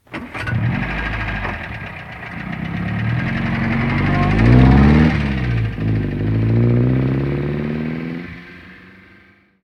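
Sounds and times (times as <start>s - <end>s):
car starting and driving away: 0.0s - 9.6s.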